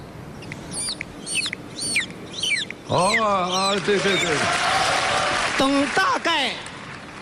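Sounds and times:
faint hum: 0.0 - 7.1
voice imitating a baby chick's cheeping: 0.7 - 4.4
speech: 2.9 - 4.8, 5.6 - 6.7.

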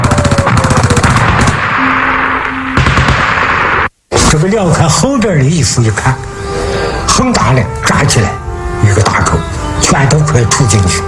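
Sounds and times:
machine gun firing in a battle: 0.0 - 2.2, 2.8 - 3.9
speech: 4.4 - 6.3, 7.2 - 11.0.

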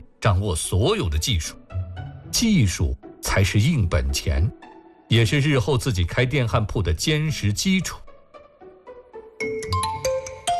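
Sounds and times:
speech: 0.2 - 8.0
phone playing a melodic electronic ringtone: 9.4 - 10.5.

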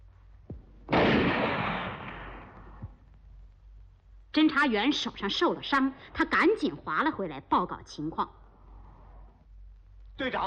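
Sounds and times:
gunshot during a clash near a small boat: 0.8 - 3.0
speech: 4.4 - 8.4, 10.2 - 10.4.

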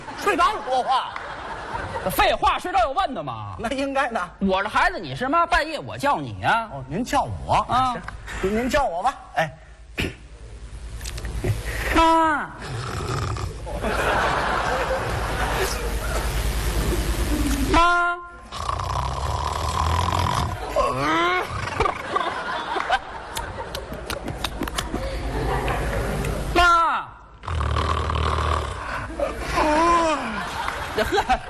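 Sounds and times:
audience laughing: 0.0 - 2.4, 13.7 - 17.8, 20.5 - 26.5, 28.9 - 31.4
speech: 0.2 - 10.2, 12.0 - 12.8
imitated wet lip smacking: 11.0 - 11.7
performer's voice imitating snorting snores: 12.6 - 13.7, 18.5 - 22.0, 27.4 - 30.3.

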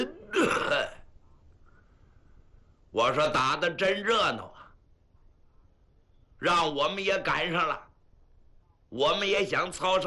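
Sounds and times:
storyteller imitating a cough: 0.0 - 1.0
speech: 3.0 - 4.6, 6.4 - 7.9, 8.9 - 10.0.

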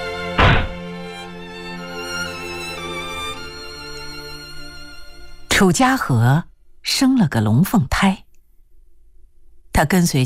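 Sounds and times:
heavy door slammed shut after a person is pushed out: 0.4 - 0.8
speech: 5.6 - 8.2, 9.8 - 10.2.

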